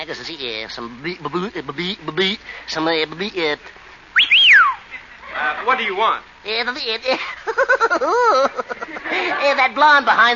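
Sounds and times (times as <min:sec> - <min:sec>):
speech: 0:00.0 - 0:04.4, 0:05.4 - 0:10.3
person whistling a rising then sliding note: 0:04.2 - 0:04.8
laughter: 0:07.1 - 0:10.3.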